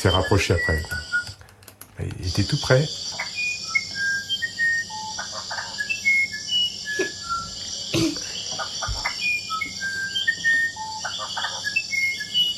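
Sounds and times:
speech: 0:00.0 - 0:01.1, 0:02.0 - 0:03.0
wren singing bright high whistled notes: 0:00.0 - 0:01.3, 0:02.1 - 0:12.5
buzzing chorus of insects in a quiet forest: 0:00.0 - 0:12.5.

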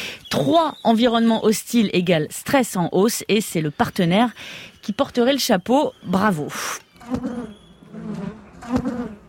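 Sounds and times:
speech: 0:00.3 - 0:09.2
wild native honeybees buzzing: 0:07.0 - 0:09.2.

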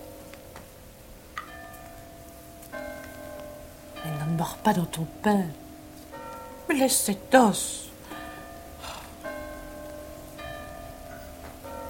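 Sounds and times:
church bell tolling for a funeral: 0:01.4 - 0:11.8
speech: 0:04.0 - 0:05.6, 0:06.7 - 0:07.9
soft breathy noises: 0:08.0 - 0:09.5.

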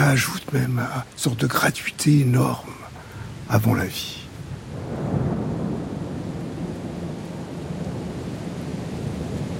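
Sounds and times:
rain hiss: 0:00.0 - 0:09.5
speech: 0:00.1 - 0:02.8, 0:03.5 - 0:04.2
deep rolling thunder of a thunderstorm: 0:04.6 - 0:09.5.

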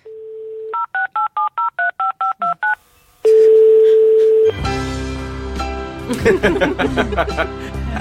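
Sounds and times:
steady telephone dial tone: 0:00.0 - 0:04.6
evenly spaced telephone keypad beeps: 0:00.7 - 0:04.5
telephone ringback tone: 0:03.2 - 0:04.6
laughter: 0:06.1 - 0:07.9.

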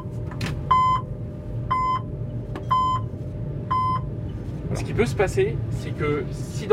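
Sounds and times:
low rumbling hum: 0:00.0 - 0:06.7
train cab passenger alarm electronic warning beeps: 0:00.7 - 0:01.1, 0:01.7 - 0:02.1, 0:02.7 - 0:03.1, 0:03.7 - 0:04.1
speech: 0:04.8 - 0:06.7.

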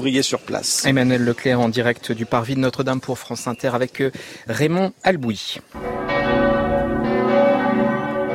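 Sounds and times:
speech: 0:00.0 - 0:06.1
large cathedral church bells ringing in Auxerre: 0:05.8 - 0:08.3.

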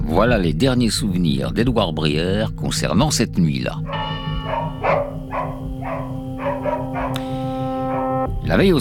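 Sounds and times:
speech: 0:00.2 - 0:04.1, 0:08.5 - 0:08.7
dogs barking at night: 0:03.7 - 0:08.4.

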